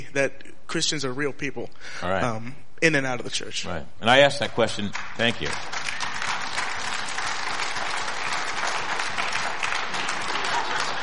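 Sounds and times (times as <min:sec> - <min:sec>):
speech: 0:00.1 - 0:05.9
group of people applauding: 0:04.8 - 0:11.0.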